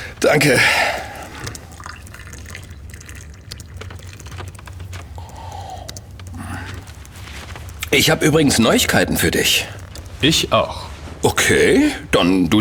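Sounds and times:
coffee poured from a pot into a cup: 0.0 - 6.9
speech: 0.3 - 1.0, 7.9 - 12.5.

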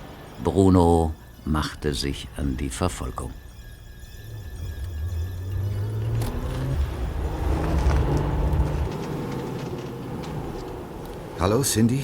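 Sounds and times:
speech: 0.4 - 3.4, 11.4 - 12.0
hotwired small car engine starting and driving off: 3.5 - 12.0.

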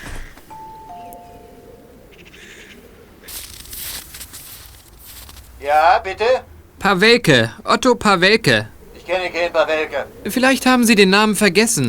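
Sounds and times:
two-tone ding-dong doorbell chime: 0.5 - 1.8
rustling noise: 3.2 - 5.9
speech: 5.6 - 11.8.

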